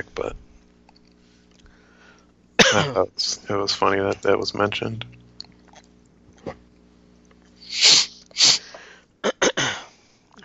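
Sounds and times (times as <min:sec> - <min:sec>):
speech: 0:02.7 - 0:05.2
woman sneezing: 0:07.6 - 0:09.8.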